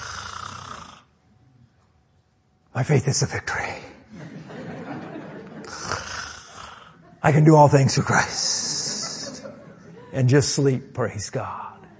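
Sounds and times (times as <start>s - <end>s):
man's voice imitating loud raspy snoring: 0.0s - 1.1s, 5.6s - 7.0s
speech: 2.8s - 3.8s, 7.2s - 8.7s, 10.2s - 11.7s
laughter: 4.0s - 6.0s, 6.8s - 11.9s.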